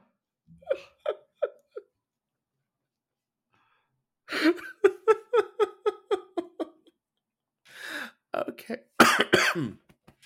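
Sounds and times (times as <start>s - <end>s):
laughter: 4.4s - 6.9s
person coughing: 9.0s - 9.8s.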